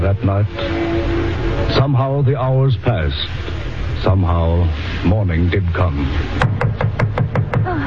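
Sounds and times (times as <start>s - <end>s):
speech: 0.1s - 0.9s, 1.6s - 6.5s
loud knocks on a front door by a Coast Guard officer: 6.4s - 7.7s.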